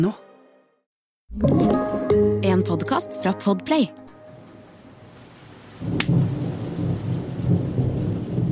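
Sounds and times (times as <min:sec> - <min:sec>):
speech: 0:00.0 - 0:00.2, 0:01.3 - 0:01.9, 0:02.8 - 0:04.0
heavy rain blowing into a bus shelter: 0:04.3 - 0:08.5.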